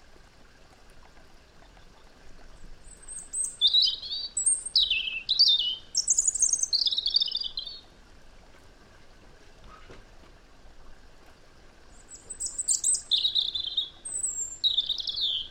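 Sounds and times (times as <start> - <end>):
faint background hiss: 0.0 - 15.4
European robin Erithacus rubecula giving tinkling and warbled phrases: 2.8 - 7.9, 11.9 - 15.4.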